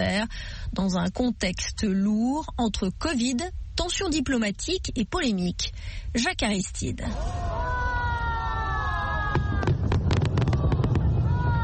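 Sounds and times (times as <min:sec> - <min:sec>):
speech: 0:00.0 - 0:07.7
steady crowd-like roar: 0:07.1 - 0:11.6
fireworks bursting in sharp cracks and pops: 0:09.2 - 0:11.6.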